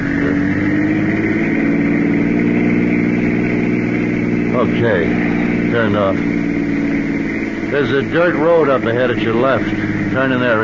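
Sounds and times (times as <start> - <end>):
car engine accelerating: 0.0 - 10.6
speech: 4.7 - 6.4, 7.7 - 10.6.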